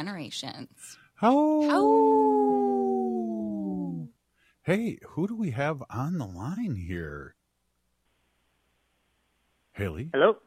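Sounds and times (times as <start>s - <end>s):
speech: 0.0s - 2.5s, 4.7s - 7.4s, 9.8s - 10.4s
wolf howling: 1.4s - 4.1s.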